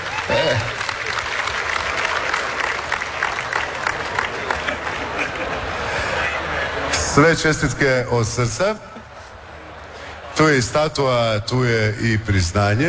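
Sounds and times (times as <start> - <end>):
audience applause welcoming an award winner at an awards ceremony: 0.0 - 7.0
laughter: 0.0 - 12.8
speech: 0.4 - 0.8, 7.2 - 8.9, 10.4 - 12.8.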